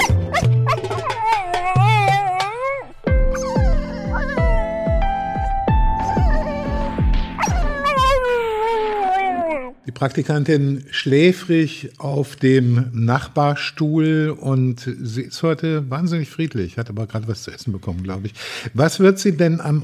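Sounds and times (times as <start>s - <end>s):
dog yipping: 0.0s - 4.9s, 6.0s - 9.8s
steady rhythmic thumping backing: 0.0s - 8.2s
dog whimpering and whining: 0.0s - 9.8s
speech: 10.0s - 19.8s.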